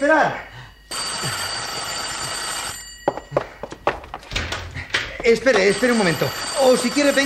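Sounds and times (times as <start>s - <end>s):
speech: 0.0s - 0.6s, 1.2s - 1.5s, 5.2s - 7.2s
telephone bell ringing: 0.7s - 4.2s, 5.2s - 7.2s.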